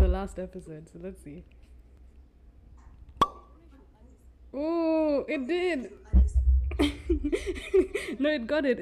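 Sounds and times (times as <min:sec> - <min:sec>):
speech: 0:00.2 - 0:01.7, 0:04.5 - 0:08.8
faint murmur: 0:02.8 - 0:08.8
cork popping from port wine bottle: 0:03.1 - 0:03.5.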